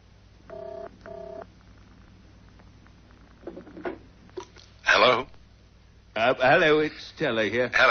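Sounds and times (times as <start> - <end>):
quiet hiss on the telephone line: 0.0 - 7.8
telephone ringing tone down the line as short buzzing bursts: 0.5 - 1.5
speech: 6.4 - 7.8.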